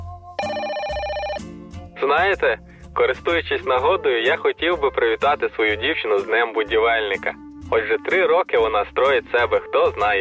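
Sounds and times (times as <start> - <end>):
telephone ringing: 0.4 - 1.6
speech: 2.1 - 10.2.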